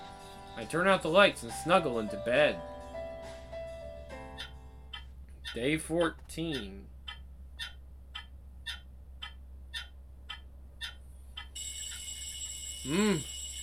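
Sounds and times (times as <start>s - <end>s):
speech: 0.6s - 2.7s, 5.5s - 6.9s, 12.8s - 13.3s
clock ticking: 4.4s - 11.6s
alarm clock ringing: 11.5s - 13.6s
person groaning: 12.9s - 13.3s.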